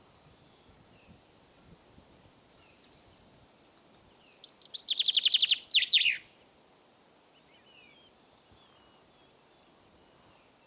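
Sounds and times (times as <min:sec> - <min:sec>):
common chaffinch Fringilla coelebs singing: 0:04.1 - 0:06.2.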